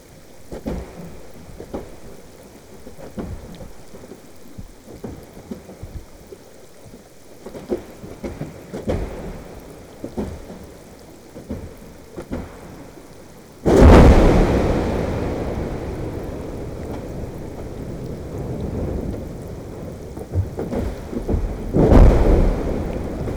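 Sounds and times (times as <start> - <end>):
large collapse recorded by hydrophone: 13.6 - 23.3.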